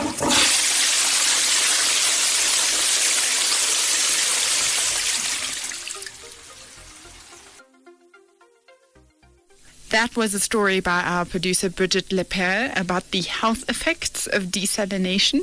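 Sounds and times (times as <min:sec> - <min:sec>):
toilet flushing: 0:00.0 - 0:07.6
toilet tank refilling trickle: 0:00.4 - 0:07.6
speech: 0:10.0 - 0:15.4.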